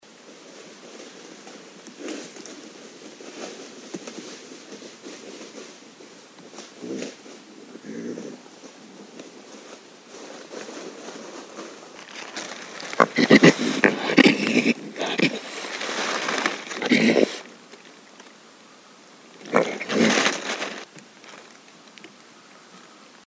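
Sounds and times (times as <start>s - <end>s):
Northern Raccoon Procyon lotor vocalizing in North America: 6.6s - 8.9s, 12.0s - 18.3s, 19.3s - 21.0s.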